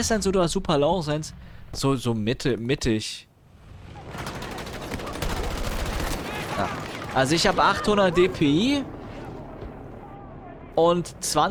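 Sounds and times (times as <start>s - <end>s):
speech: 0.0s - 3.3s, 6.6s - 8.9s, 10.8s - 11.4s
rapid gunfire from a shooter video game: 3.9s - 7.7s.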